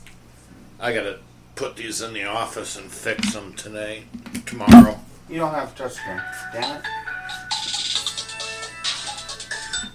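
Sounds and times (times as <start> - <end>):
speech: 0.8 - 7.4
melodic electronic telephone ringtone: 6.3 - 9.9.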